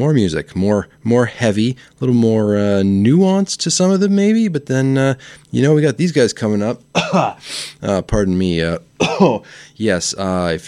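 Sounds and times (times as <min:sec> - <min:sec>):
speech: 0:00.0 - 0:10.6
radio host clearing throat: 0:06.9 - 0:07.5, 0:09.0 - 0:09.5
radio host coughing: 0:06.9 - 0:07.8, 0:09.0 - 0:09.6.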